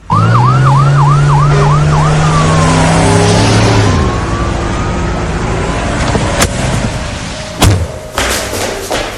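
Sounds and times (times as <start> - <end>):
police van siren wailing: 0.0 - 6.4
police van rumbling into a club compound: 0.0 - 9.1.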